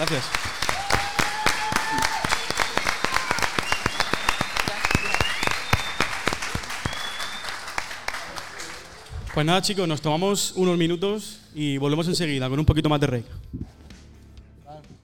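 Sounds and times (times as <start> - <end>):
speech: 0.0 - 0.6, 9.4 - 13.7
group of students clapping: 0.0 - 9.5
high-pitched whistles: 2.2 - 7.7.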